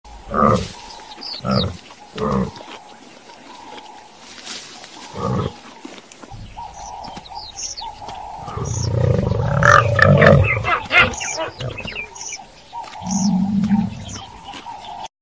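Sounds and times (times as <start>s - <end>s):
giraffe: 0.1s - 15.1s.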